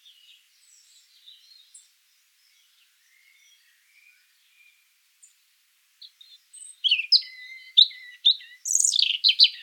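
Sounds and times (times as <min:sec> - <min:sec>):
European robin singing: 0:00.0 - 0:05.4, 0:06.0 - 0:09.6.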